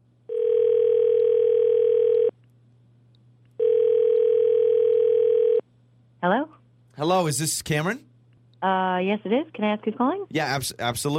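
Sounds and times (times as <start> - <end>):
telephone line tone while a call is being placed: 0.3 - 2.3, 3.6 - 5.6
speech: 7.1 - 11.1.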